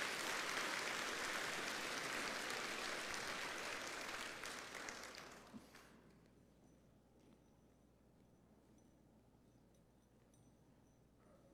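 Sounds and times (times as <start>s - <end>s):
crowd applauding for graduates: 0.0s - 6.0s.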